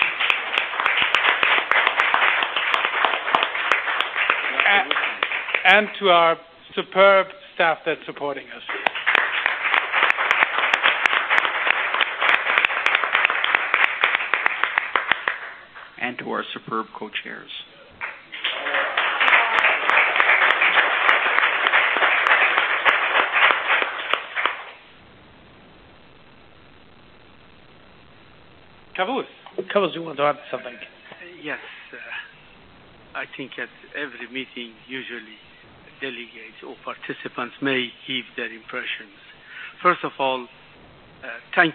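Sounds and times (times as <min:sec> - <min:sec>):
audience at a meeting applauding: 0:00.0 - 0:06.2, 0:08.6 - 0:16.0, 0:18.0 - 0:24.9
speech: 0:05.7 - 0:08.9, 0:16.1 - 0:17.7, 0:29.0 - 0:32.2, 0:33.2 - 0:40.6, 0:41.2 - 0:41.7.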